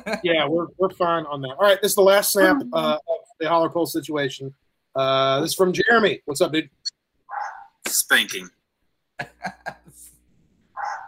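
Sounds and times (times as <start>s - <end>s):
speech: 0.0s - 6.8s, 7.9s - 8.6s, 9.2s - 10.0s
dogs barking: 7.3s - 7.8s, 10.8s - 11.0s
laughter: 9.2s - 10.1s.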